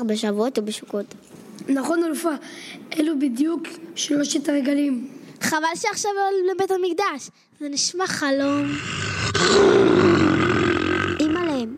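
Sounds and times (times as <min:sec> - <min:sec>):
speech: 0:00.0 - 0:10.2
lion roaring loudly: 0:08.4 - 0:11.7.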